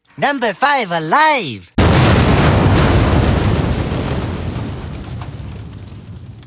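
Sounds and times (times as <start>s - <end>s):
speech: 0.2s - 1.8s
muffled deep controlled explosion: 1.8s - 6.4s.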